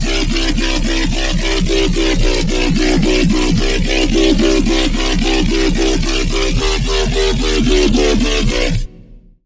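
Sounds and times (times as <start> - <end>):
wobble synth on Serum 2: 0.0 - 9.1.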